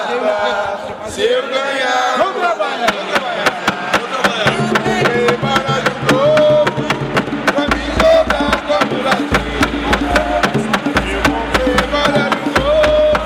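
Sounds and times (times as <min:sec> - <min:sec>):
batuque de umbigada music: 0:00.2 - 0:13.2.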